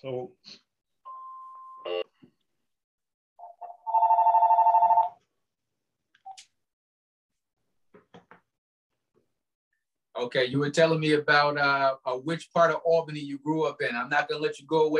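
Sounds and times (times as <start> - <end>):
speech: 0.0 - 0.6, 10.2 - 14.9
telephone ringing in a rapidly trilling burst: 3.4 - 5.2.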